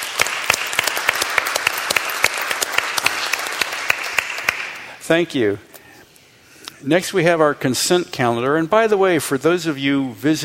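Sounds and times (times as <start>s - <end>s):
applause from a small group of council members: 0.0s - 4.9s
speech: 5.1s - 5.7s, 6.8s - 10.4s.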